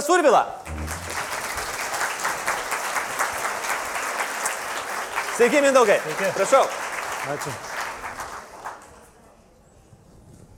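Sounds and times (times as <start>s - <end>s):
speech: 0.1s - 0.6s, 5.4s - 7.7s
audience applause greeting a film director: 0.7s - 8.9s.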